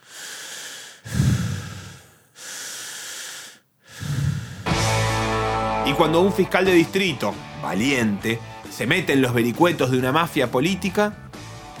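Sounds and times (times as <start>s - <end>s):
heavy menacing breathing of a threatening caller through a phone line: 0.0s - 4.8s
speech: 5.9s - 11.2s.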